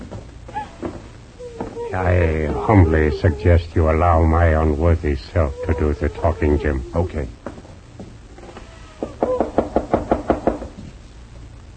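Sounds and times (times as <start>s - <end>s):
speech: 1.9s - 7.4s
firm knocks on a house door: 9.0s - 10.8s.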